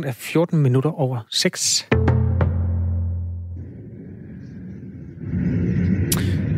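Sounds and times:
speech: 0.0s - 2.3s
deep continuous rumble: 3.6s - 6.5s.

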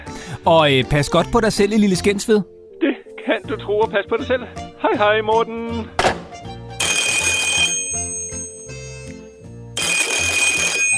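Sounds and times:
speech: 0.4s - 2.6s, 3.3s - 6.0s
telephone bell ringing: 6.8s - 10.9s.

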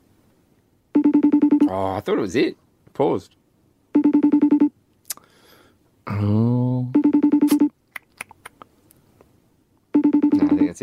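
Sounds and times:
FaceTime video-call ringtone chirping in electronic beeps: 1.0s - 1.7s, 4.0s - 4.7s, 6.9s - 7.7s, 10.0s - 10.8s
speech: 1.7s - 3.4s, 6.1s - 7.0s
short vocal sound: 6.0s - 7.0s.

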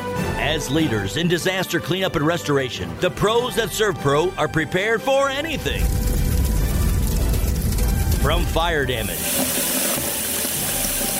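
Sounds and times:
speech: 0.5s - 6.1s, 8.2s - 9.6s
running water pouring: 5.5s - 11.1s.

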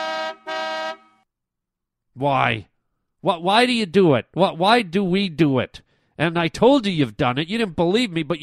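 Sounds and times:
car horn honking: 0.0s - 1.2s
speech: 2.2s - 8.4s.

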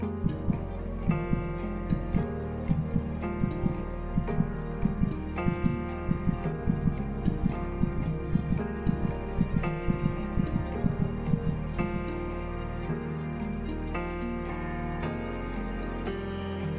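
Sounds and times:
gentle ambient music with slowly shifting chords: 0.0s - 16.7s
soft heartbeat double-thump: 0.2s - 12.0s.

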